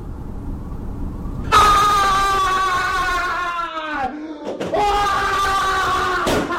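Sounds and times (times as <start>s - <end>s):
person screaming in a workplace scream room: 1.5s - 6.5s.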